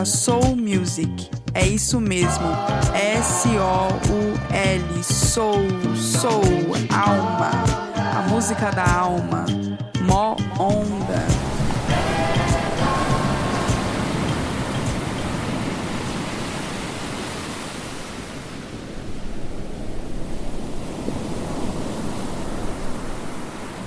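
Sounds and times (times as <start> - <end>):
speech: 0.0 - 11.5
ocean waves breaking on a beach: 10.4 - 23.8.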